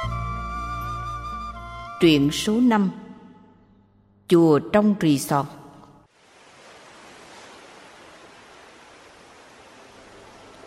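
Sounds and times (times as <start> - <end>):
speech: 2.0 - 3.0, 4.3 - 5.6
sea surf washing against a line of rocks: 6.1 - 10.6.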